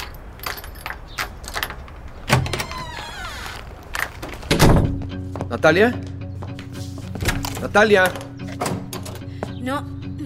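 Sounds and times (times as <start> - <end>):
keys jangling: 0.0 - 1.9
lock turning on an apartment door: 0.0 - 4.7, 7.2 - 9.3
speech: 5.5 - 6.1, 7.6 - 8.2, 9.6 - 9.9.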